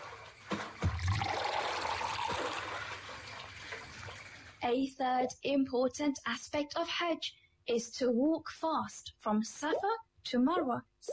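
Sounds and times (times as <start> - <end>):
water pouring from a well bucket into a bottle: 0.8 - 4.4
speech: 4.7 - 11.1.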